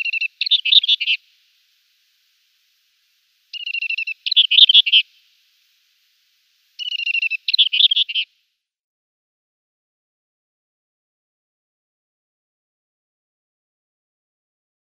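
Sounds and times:
Scrub Warbler song with buzzy trills and twittering flourish: 0.0 - 1.2, 3.5 - 5.3, 6.8 - 8.3.

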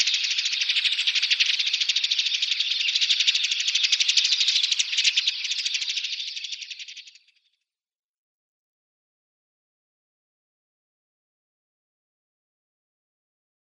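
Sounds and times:
Dead Sea sparrow chattering in a rattle of rapid high chirps: 0.0 - 7.3.

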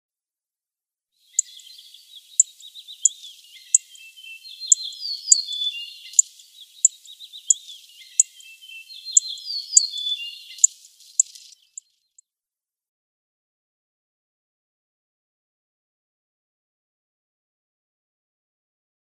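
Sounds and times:
Yellow-breasted Bunting calls: 1.3 - 12.0.

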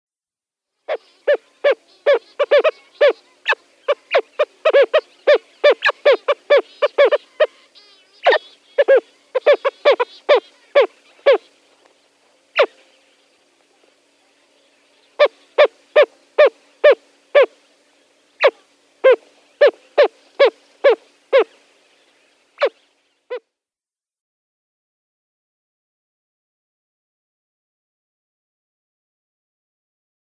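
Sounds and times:
White-faced Storm-Petrel call: 0.9 - 11.6, 12.6 - 12.8, 15.1 - 17.6, 18.4 - 21.6.

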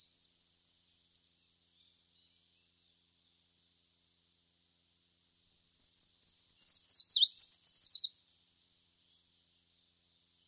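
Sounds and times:
Eurasian treecreeper song of thin very high notes: 5.4 - 8.1.

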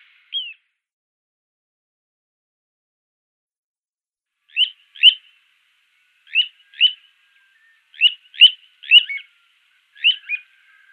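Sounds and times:
little ringed plover calls: 4.5 - 10.9.

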